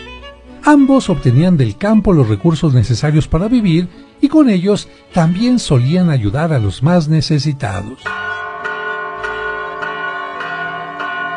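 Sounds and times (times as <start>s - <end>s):
speech: 0.7s - 8.2s
church bell tolling at noon for midday prayer: 8.0s - 11.3s.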